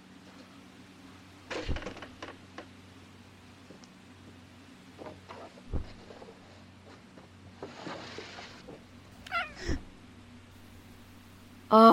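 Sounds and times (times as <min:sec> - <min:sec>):
low steady hum: 0:00.0 - 0:11.9
soft thumps and clicks: 0:05.0 - 0:06.2
female cat meowing: 0:09.2 - 0:09.8
speech: 0:11.7 - 0:11.9.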